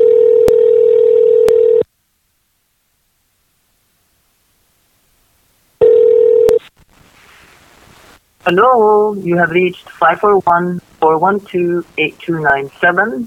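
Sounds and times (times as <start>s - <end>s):
telephone call to the United States ringing out over the line: 0.0s - 1.8s, 5.8s - 6.6s
speech: 8.5s - 13.2s.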